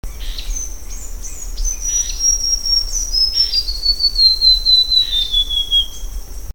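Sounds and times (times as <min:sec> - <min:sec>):
Basileuterus leucoblepharus song: 0:00.0 - 0:06.5.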